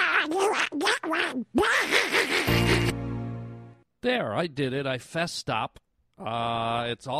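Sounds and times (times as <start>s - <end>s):
person imitating a raspy cartoon-duck voice: 0.0s - 2.4s
speech: 0.4s - 2.0s, 4.0s - 7.1s.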